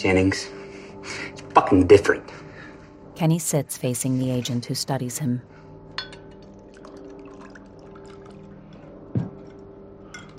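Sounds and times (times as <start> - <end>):
speech: 0.0 - 2.4, 3.2 - 5.6
sharp clinks of glass: 6.0 - 6.4
liquid pouring into a glass: 6.0 - 9.6.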